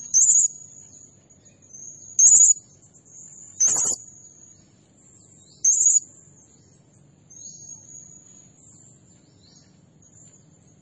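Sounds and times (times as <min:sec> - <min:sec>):
low background hum: 0:00.0 - 0:10.8
Blue-crowned hanging parrot high buzzy burst: 0:03.6 - 0:04.0.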